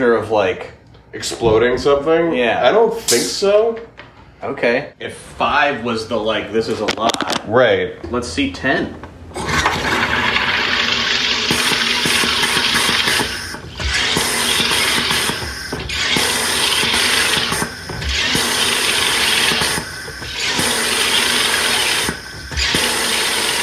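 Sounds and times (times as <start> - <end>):
speech: 0.0 - 9.4
carbonation machine hissing and buzzing pumping gas into water: 9.4 - 23.6.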